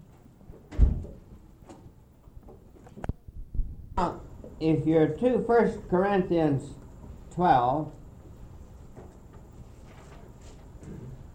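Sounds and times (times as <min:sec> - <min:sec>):
door thudding shut in a large room: 0:00.7 - 0:01.2
speech: 0:04.0 - 0:06.8, 0:07.4 - 0:08.0.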